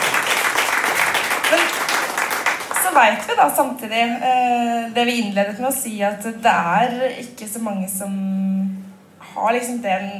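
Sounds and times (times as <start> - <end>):
audience applause: 0.0 - 3.2
speech: 3.0 - 8.5, 9.4 - 10.1.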